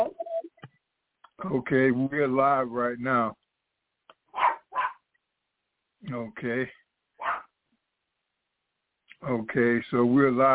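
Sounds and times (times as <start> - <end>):
speech: 1.4 - 3.4, 6.0 - 6.8, 9.2 - 10.5
dog barking: 4.3 - 5.1, 7.2 - 7.6.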